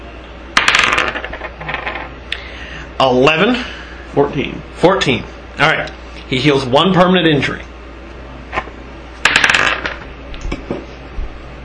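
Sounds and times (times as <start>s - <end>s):
penny dropping during a tabletop dice game: 0.6s - 2.1s, 9.2s - 10.1s
speech: 3.0s - 7.7s.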